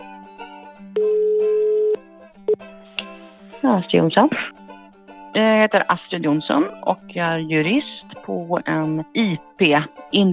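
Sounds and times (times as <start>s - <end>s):
speech: 1.0s - 1.2s, 3.6s - 4.5s, 5.3s - 10.3s
short beep: 1.0s - 2.6s
telephone ringing tone while placing a call: 1.0s - 2.6s.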